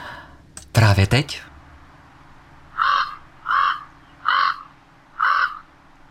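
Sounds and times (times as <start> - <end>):
faint hum: 0.0 - 6.0
speech: 1.0 - 1.5
common raven croaking calls: 2.6 - 5.8.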